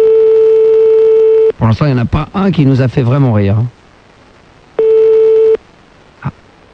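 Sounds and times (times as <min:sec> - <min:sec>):
telephone ringback tone on an outgoing call: 0:00.0 - 0:01.5, 0:04.8 - 0:05.6
speech: 0:01.7 - 0:03.8.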